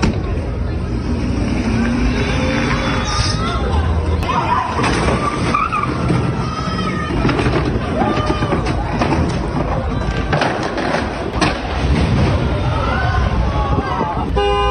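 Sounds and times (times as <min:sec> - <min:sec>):
stolen tow truck engine roaring: 0:00.0 - 0:14.7
tow truck tyres skidding: 0:00.0 - 0:14.7
agitated people shouting: 0:02.4 - 0:10.4, 0:12.4 - 0:14.7
tow truck crashing into parked cars: 0:04.2 - 0:13.5
car horns honking: 0:14.3 - 0:14.7.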